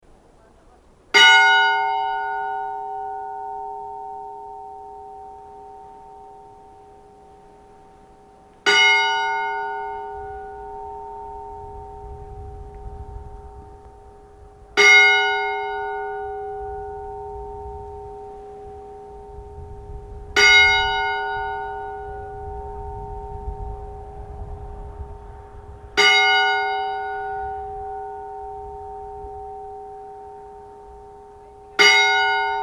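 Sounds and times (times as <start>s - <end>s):
church funeral bell ringing: 1.1s - 32.6s.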